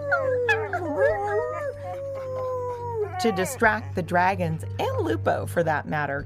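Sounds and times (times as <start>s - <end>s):
dogs in kennels yelping, whining and howling: 0.0s - 4.1s
speech: 3.2s - 6.2s.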